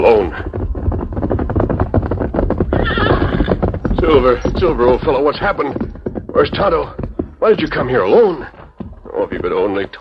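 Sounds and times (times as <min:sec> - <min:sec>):
speech: 0:00.0 - 0:00.6, 0:04.2 - 0:05.8, 0:06.4 - 0:08.6, 0:09.3 - 0:10.0
horse hooves drumming: 0:00.0 - 0:10.0
horse whinnying: 0:02.6 - 0:04.4.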